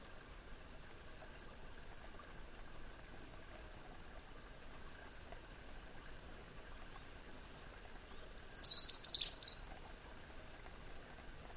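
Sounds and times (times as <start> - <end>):
faint background hiss: 0.0 - 11.5
European robin Erithacus rubecula singing: 8.1 - 9.6.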